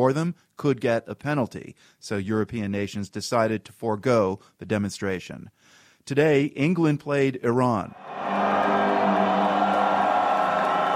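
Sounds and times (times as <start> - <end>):
speech: 0.0 - 9.3
large stadium crowd booing during national anthem: 7.9 - 10.9.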